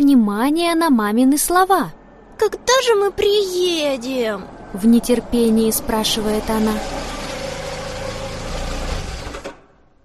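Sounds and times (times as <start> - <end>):
speech: 0.1 - 7.1
car engine idling and shutting off: 3.8 - 10.0.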